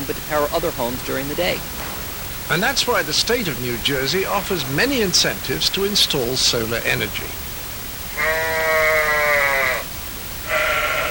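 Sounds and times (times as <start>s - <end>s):
speech: 0.1s - 1.8s, 2.5s - 7.4s
sheep bleating at a sheep shearing shack in New Jersey: 8.1s - 11.0s.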